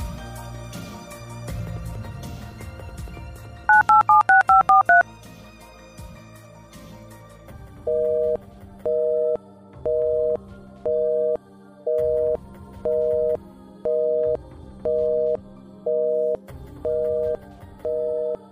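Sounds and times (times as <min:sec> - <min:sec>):
quiet music: 0:00.0 - 0:18.4
electronic touch-tone beeps of a phone number being dialed: 0:03.7 - 0:05.0, 0:07.9 - 0:18.4.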